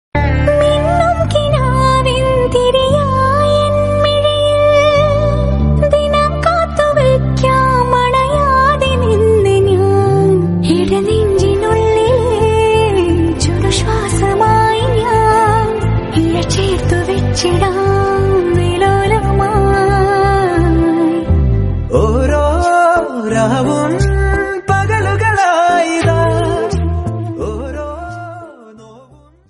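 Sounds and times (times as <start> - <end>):
woman singing a Malayalam song: 0.4 - 28.6.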